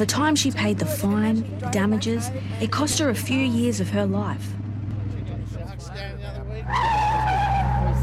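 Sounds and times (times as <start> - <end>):
speech: 0.0 - 4.6
low car engine rumble: 0.0 - 8.0
car tyres skidding around a corner: 6.5 - 8.0.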